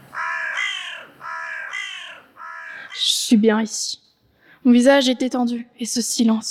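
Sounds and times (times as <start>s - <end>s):
crows cawing: 0.0s - 3.2s
speech: 3.0s - 4.0s, 4.6s - 6.4s.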